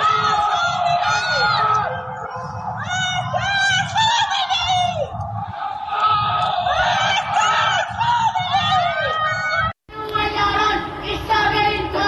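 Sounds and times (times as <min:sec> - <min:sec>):
protesters shouting slogans from windows at night: 0:00.0 - 0:12.0.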